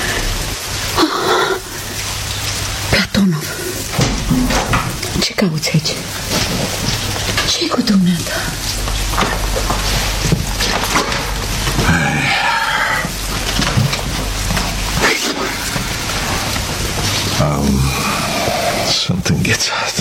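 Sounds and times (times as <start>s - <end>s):
steady dense rain: 0.0s - 20.0s
speech: 5.3s - 7.0s, 7.6s - 10.0s.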